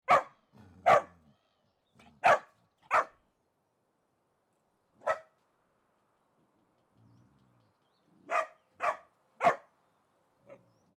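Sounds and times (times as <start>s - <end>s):
small dog barking: 0.0s - 1.2s, 2.2s - 3.2s, 5.0s - 5.4s, 8.3s - 9.7s.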